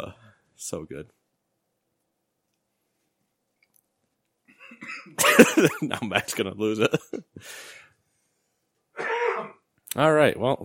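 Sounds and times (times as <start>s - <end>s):
speech: 0.0s - 1.2s, 4.7s - 7.8s, 9.4s - 10.6s
person coughing: 4.5s - 5.9s, 9.0s - 9.6s.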